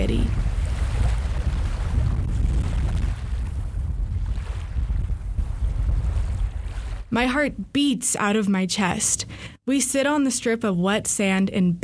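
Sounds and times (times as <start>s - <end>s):
strong blizzard wind roaring: 0.0s - 7.2s
speech: 7.2s - 11.8s.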